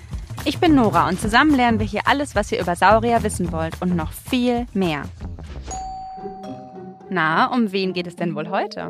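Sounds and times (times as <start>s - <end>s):
busy bed of music or sound: 0.0s - 8.8s
speech: 0.4s - 5.2s, 7.1s - 8.8s
doorbell ding-dong chime: 5.7s - 7.6s.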